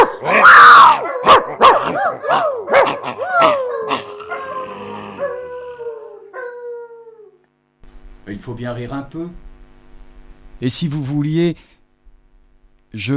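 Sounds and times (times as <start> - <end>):
person imitating a dog barking and howling: 0.0 - 7.4
speech: 8.4 - 9.5, 10.6 - 11.7, 12.9 - 13.1.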